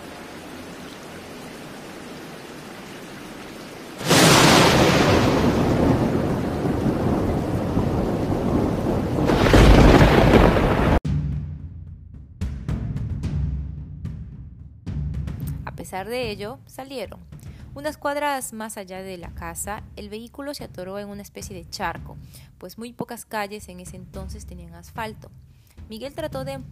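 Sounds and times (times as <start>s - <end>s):
heavy torrential rain: 0.0s - 11.0s
thunder rumbling: 0.0s - 11.0s
speech: 15.9s - 26.7s.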